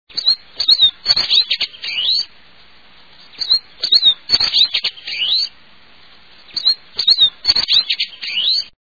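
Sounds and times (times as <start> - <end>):
Lawrence's goldfinch: 0.2 - 2.3, 3.2 - 5.6, 6.5 - 8.7.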